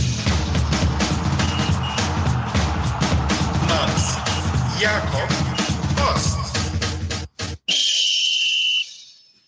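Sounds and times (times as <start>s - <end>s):
steady stadium crowd noise: 0.2s - 6.6s
referee's whistle long shrill final blast: 1.4s - 2.1s, 5.3s - 5.8s, 7.7s - 9.2s.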